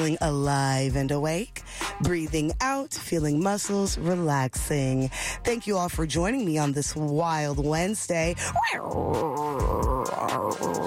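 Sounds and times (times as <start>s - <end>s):
speech: 0.0s - 10.8s
voice imitating a tiger growl: 8.5s - 10.8s.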